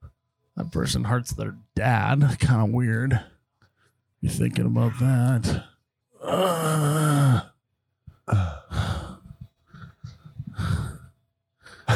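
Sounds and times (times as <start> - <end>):
speech: 0.6 - 3.3, 4.2 - 5.7, 6.3 - 7.1
person breathing heavily after climbing stairs: 8.1 - 11.9.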